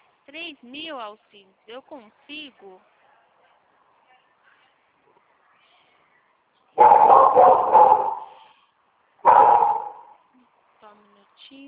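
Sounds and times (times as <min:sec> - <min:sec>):
speech: 0:00.3 - 0:03.0
dog barking harshly: 0:06.8 - 0:08.5, 0:09.2 - 0:10.2.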